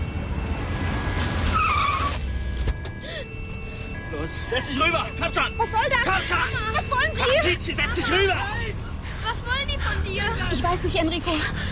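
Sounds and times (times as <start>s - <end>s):
car engine rumble: 0.0s - 11.7s
car tires squealing as a car brakes hard and skids: 0.7s - 2.3s, 4.1s - 8.7s
speech: 4.2s - 11.7s.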